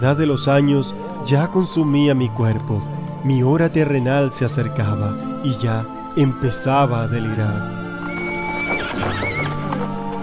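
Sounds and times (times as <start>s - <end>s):
speech: 0.0s - 7.8s, 8.8s - 9.3s
horses neighing: 7.7s - 10.2s
horse hooves clip-clopping as they are driven along: 7.9s - 10.2s.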